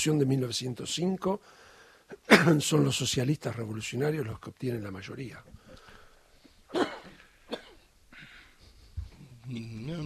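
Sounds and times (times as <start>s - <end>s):
speech: 0.0s - 5.6s, 6.7s - 7.0s, 9.5s - 10.0s
person coughing: 2.2s - 2.6s, 6.7s - 8.5s.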